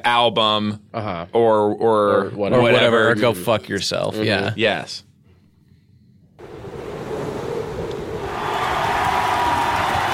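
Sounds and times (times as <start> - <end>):
speech: 0.0 - 5.1
large crowd cheering and applauding: 8.2 - 10.1.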